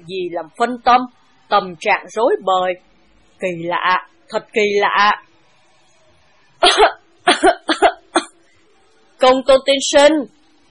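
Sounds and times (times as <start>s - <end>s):
speech: 0.0s - 5.3s, 9.2s - 10.4s
palace guard coughing dry in a period audio drama: 6.6s - 8.3s.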